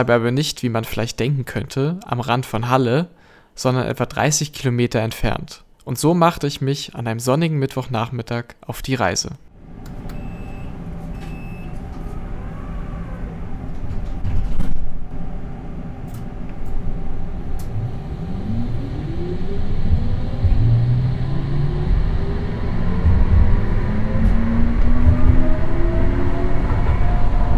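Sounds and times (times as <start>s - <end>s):
speech: 0.0s - 9.5s
city tram wheels rolling with low rumble: 10.8s - 27.5s
tram electric motor whining as the car accelerates: 16.7s - 26.5s.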